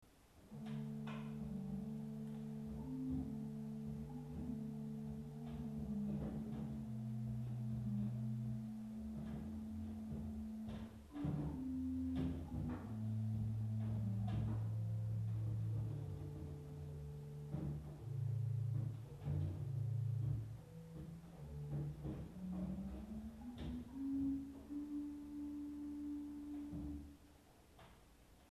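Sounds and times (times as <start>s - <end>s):
Gedbas 8 organ stop: 0.4s - 27.2s.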